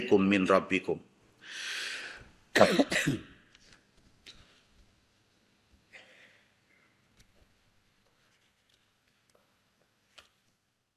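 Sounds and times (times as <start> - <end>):
speech: 0.0 - 1.7, 2.6 - 3.3
long noisy exhale: 1.4 - 2.3
man coughing hard: 2.6 - 3.4.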